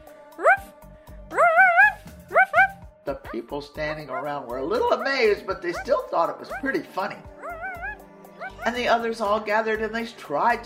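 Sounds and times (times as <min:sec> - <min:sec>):
person imitating a dog barking: 0:00.4 - 0:00.7, 0:01.3 - 0:02.8, 0:06.5 - 0:06.7, 0:07.4 - 0:08.8
speech: 0:03.1 - 0:07.3, 0:08.6 - 0:10.6.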